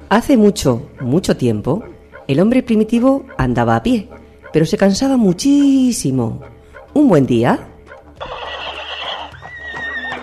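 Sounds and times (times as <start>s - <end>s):
speech: 0.1s - 8.4s
horse neighing: 8.2s - 10.2s.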